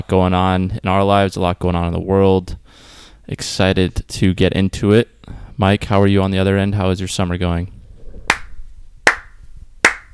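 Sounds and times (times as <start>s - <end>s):
speech: 0.1s - 7.8s
slow hand clapping: 8.3s - 10.1s.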